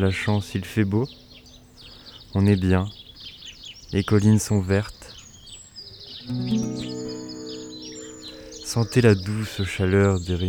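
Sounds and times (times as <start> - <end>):
speech: 0.0 - 1.3, 2.3 - 3.0, 3.9 - 5.0, 6.3 - 6.9, 8.7 - 10.4
birds singing and chirping: 0.0 - 10.4
steady droning musical tone: 6.3 - 9.4.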